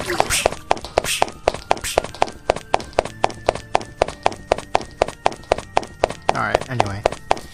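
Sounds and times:
stomping footsteps: 0.0s - 7.5s.

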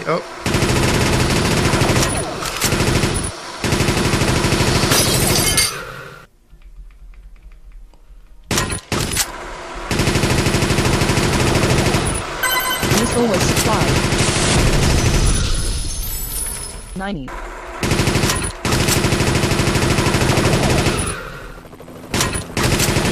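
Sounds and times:
speech: 0.0s - 0.4s, 17.1s - 17.5s
speed machine gun firing in a video game: 0.4s - 5.6s, 8.5s - 15.8s, 17.3s - 23.1s.

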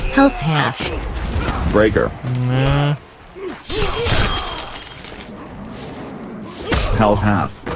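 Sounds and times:
speech: 0.2s - 3.1s, 7.0s - 7.6s
glassy ice shattering game sound effect: 4.0s - 5.3s.

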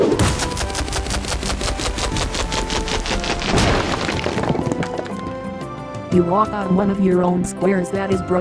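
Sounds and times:
video-game effect of an opponent throwing a rock: 0.2s - 5.3s
speech: 6.2s - 8.4s.

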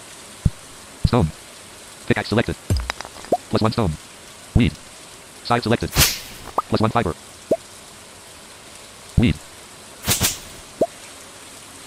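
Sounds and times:
speech: 1.1s - 1.4s, 2.1s - 2.8s, 3.5s - 4.0s, 4.6s - 4.8s, 5.5s - 7.3s, 9.2s - 9.4s
video game watering can splashy whooshes: 10.0s - 10.7s.

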